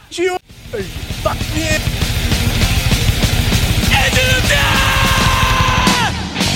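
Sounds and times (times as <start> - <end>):
speech: 0.1 - 2.6
person shouting: 3.9 - 6.4.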